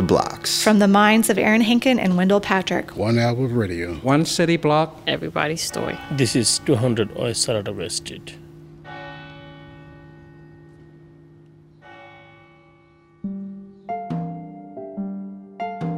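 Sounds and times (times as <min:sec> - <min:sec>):
speech: 0:00.1 - 0:08.4
resonant bells or wind chimes ringing: 0:05.7 - 0:13.2.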